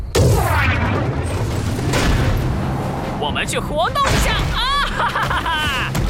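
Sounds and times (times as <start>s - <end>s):
loud booming explosion: 0.1s - 3.0s
speech: 3.4s - 5.7s
laughter: 4.4s - 6.0s.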